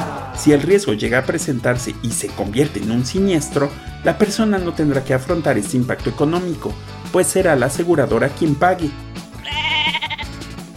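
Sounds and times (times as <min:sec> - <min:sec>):
speech: 0:00.4 - 0:09.1
sheep bleating: 0:09.4 - 0:10.4.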